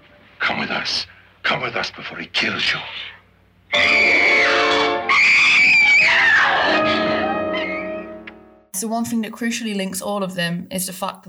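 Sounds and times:
speech: 0.5 - 4.1, 8.8 - 11.2
woman screaming in a film: 3.8 - 8.1.

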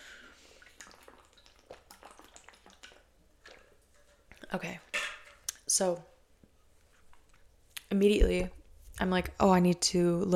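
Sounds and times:
person sipping and swallowing water: 0.0 - 5.7
speech: 4.5 - 4.9, 5.7 - 6.1, 7.9 - 10.3.

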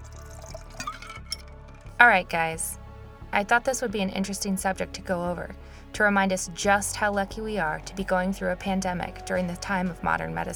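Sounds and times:
cocktail being poured into a glass: 0.0 - 1.6
speech: 2.0 - 10.5.

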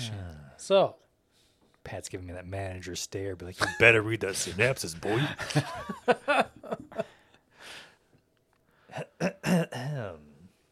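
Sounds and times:
speech: 0.6 - 1.0, 1.8 - 6.5
man clearing his throat: 8.9 - 10.3.

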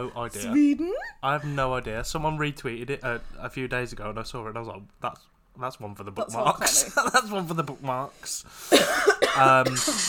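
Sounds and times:
speech: 0.0 - 10.0
person coughing: 8.7 - 10.0.

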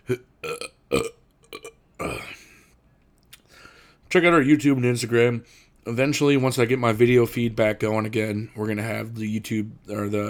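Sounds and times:
person burping: 0.0 - 2.5
speech: 0.1 - 0.3, 4.1 - 10.2.

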